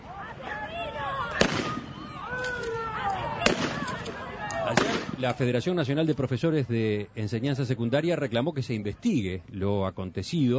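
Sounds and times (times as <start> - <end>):
crowd shouting and talking at a protest: 0.0 - 9.5
noise-making blank shots fired by police to repress a protest: 1.4 - 2.0, 3.4 - 5.4
speech: 5.2 - 10.5.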